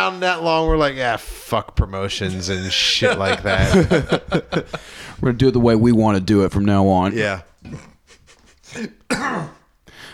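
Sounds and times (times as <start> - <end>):
speech: 0.0 - 7.9, 8.7 - 9.6
laughter: 2.4 - 5.2
faint breath: 4.7 - 5.2, 9.9 - 10.1
person clearing throat: 7.6 - 8.0, 8.7 - 9.7
person coughing: 8.7 - 9.7.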